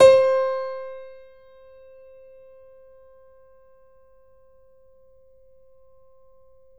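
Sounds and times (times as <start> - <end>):
grand piano C4 note played fortissimo: 0.0 - 1.9.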